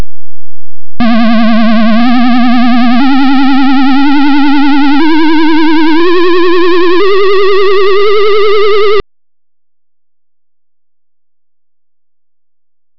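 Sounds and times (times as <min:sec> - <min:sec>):
synthesizer oscillator tone: 0:01.0 - 0:09.0.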